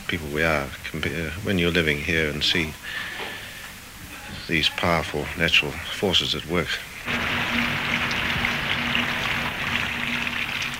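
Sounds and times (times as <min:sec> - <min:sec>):
speech: 0:00.1 - 0:03.3, 0:04.3 - 0:07.3
heavy rain pouring down: 0:06.9 - 0:10.7.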